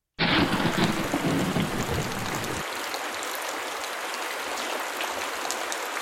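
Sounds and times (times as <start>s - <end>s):
deep rumble of thunder: 0.2s - 2.6s
heavy monsoon rain in the high desert of the southwestern United States: 0.2s - 6.0s.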